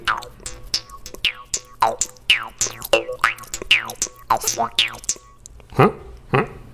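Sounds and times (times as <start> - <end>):
jaw harp twanging with a damper: 0.0 - 5.5
speech: 4.6 - 5.0.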